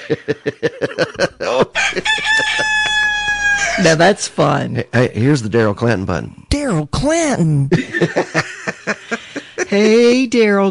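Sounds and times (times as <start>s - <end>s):
laughter: 0.0s - 3.8s, 7.7s - 10.3s
speech: 0.1s - 2.8s, 3.7s - 8.5s, 9.7s - 10.6s
rooster clucking and crowing sound effect: 1.6s - 4.0s.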